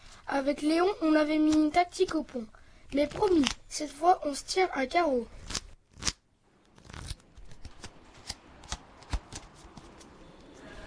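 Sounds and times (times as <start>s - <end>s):
speech: 0.3s - 5.4s
playing cards being dealt during a card game: 3.0s - 3.7s, 5.4s - 6.2s, 6.8s - 10.6s.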